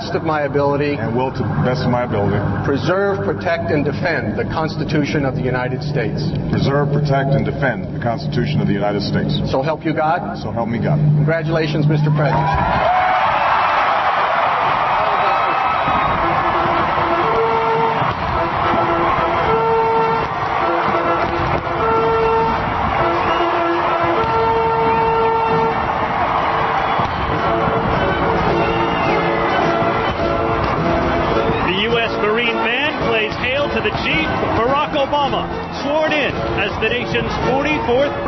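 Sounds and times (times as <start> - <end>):
speech: 0.1 - 13.1
enormous outdoor crowd cheering at inauguration: 12.0 - 38.2
sustained horn-like tones: 15.0 - 38.2.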